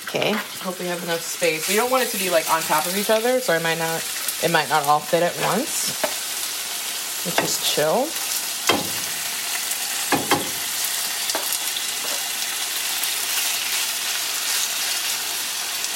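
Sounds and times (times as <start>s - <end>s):
chicken frying in a pan: 0.0s - 15.9s
speech: 0.1s - 6.1s, 7.2s - 8.2s.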